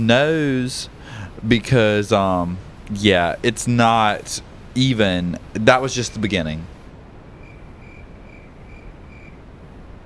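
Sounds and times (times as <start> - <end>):
speech: 0.0 - 6.7
constant hiss of noise: 0.0 - 10.0
cricket chirping: 7.4 - 9.4.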